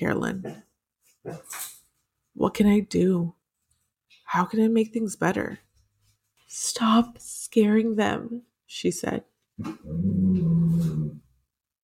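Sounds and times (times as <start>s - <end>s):
speech: 0.0s - 1.7s, 2.4s - 3.4s, 4.3s - 5.7s, 6.5s - 11.2s
dogs growling low and rumbling: 9.6s - 11.3s.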